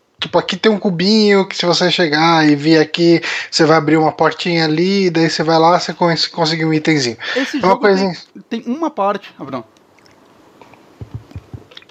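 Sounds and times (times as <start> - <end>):
speech: 0.3 - 9.7
person drinking water in quick gulps: 9.9 - 11.8.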